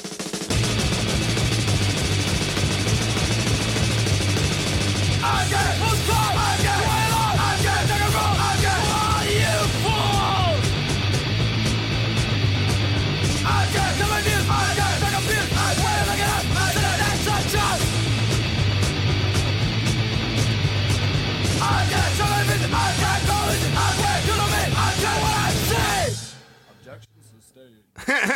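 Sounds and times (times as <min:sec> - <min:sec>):
old school hardcore punk song with distorted instrumentation: 0:00.2 - 0:26.6
shouted punk vocals: 0:05.2 - 0:10.7, 0:13.4 - 0:18.0, 0:21.6 - 0:26.4
laughter: 0:28.0 - 0:28.3.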